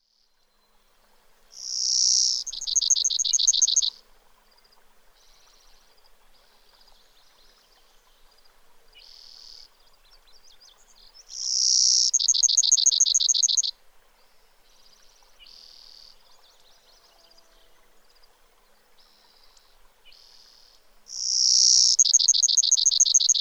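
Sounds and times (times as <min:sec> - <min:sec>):
Brewer's Sparrow singing: 0:01.6 - 0:03.9, 0:11.4 - 0:13.7, 0:21.1 - 0:23.4.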